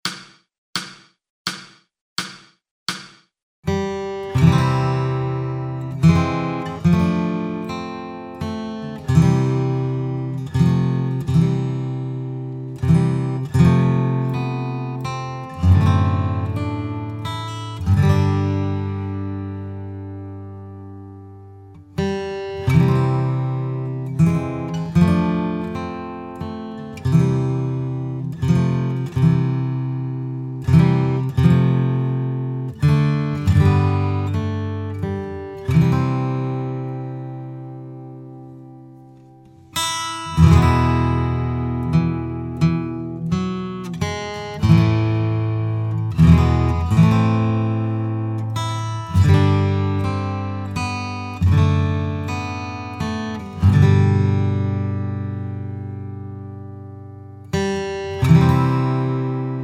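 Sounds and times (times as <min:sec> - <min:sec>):
guitar solo: 0:03.8 - 0:59.6.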